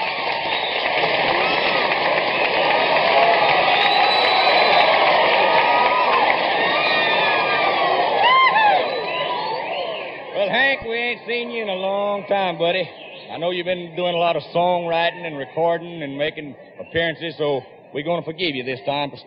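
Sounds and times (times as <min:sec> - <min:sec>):
audience cheering to welcome a folk artist: 0:00.0 - 0:14.2
whistles: 0:00.4 - 0:01.8, 0:03.5 - 0:05.3, 0:06.6 - 0:07.5, 0:08.5 - 0:10.3
whoops and shouts: 0:03.0 - 0:10.0
speech: 0:11.3 - 0:19.2.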